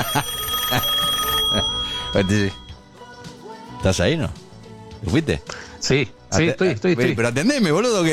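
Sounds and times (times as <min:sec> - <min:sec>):
phone's outgoing ringing tone through the line: 0:00.0 - 0:02.9
speech: 0:02.2 - 0:02.6, 0:03.8 - 0:04.4, 0:05.0 - 0:08.1.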